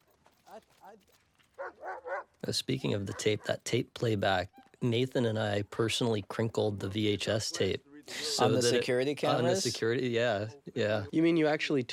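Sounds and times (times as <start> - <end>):
speech: 0.6 - 11.9
dogs barking: 1.6 - 3.6.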